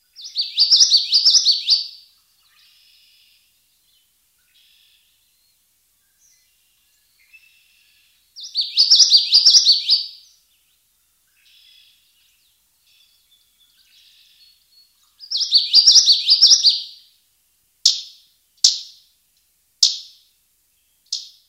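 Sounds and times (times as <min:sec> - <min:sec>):
Common Yellowthroat singing: 0:00.0 - 0:17.1.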